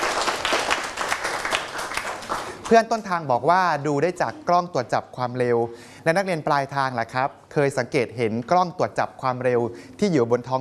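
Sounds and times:
class of students applauding a classmate: 0.0 - 2.8
speech: 2.7 - 10.5.

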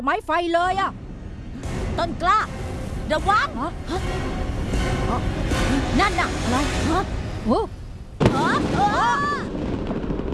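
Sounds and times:
speech: 0.0 - 1.0, 1.6 - 9.6
loud explosion with rumbling tail: 8.2 - 10.3.

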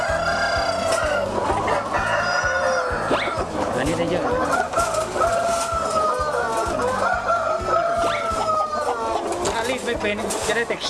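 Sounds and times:
breeder rooster clucking while being handled: 0.0 - 10.4
chorus of other chickens calling: 0.0 - 10.8
speech: 10.0 - 10.8.

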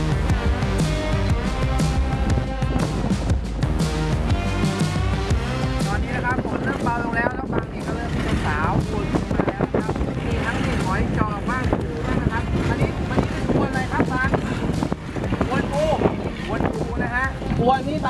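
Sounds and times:
rushing water and choppy waves beneath a small fishing boat: 0.0 - 18.0
strong monsoon wind roaring aboard a small fishing boat: 0.2 - 18.0.

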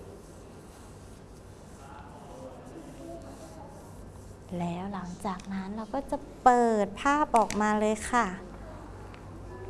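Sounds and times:
hand rubbing back and forth over folded paper: 0.0 - 5.3
speech: 4.5 - 8.5.

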